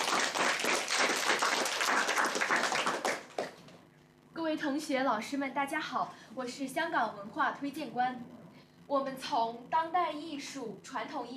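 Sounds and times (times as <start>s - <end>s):
audience applause: 0.0s - 3.7s
speech: 4.6s - 11.3s.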